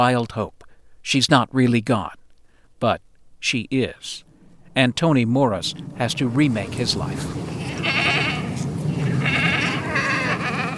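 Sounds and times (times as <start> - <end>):
speech: 0.0 - 2.2, 2.8 - 8.0
steady low outdoor rumble: 0.0 - 10.7
goats bleating in a pasture: 7.5 - 10.7.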